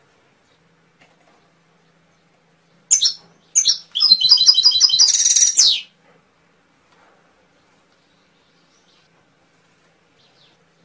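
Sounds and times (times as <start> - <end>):
domestic canary singing: 2.9 - 5.9.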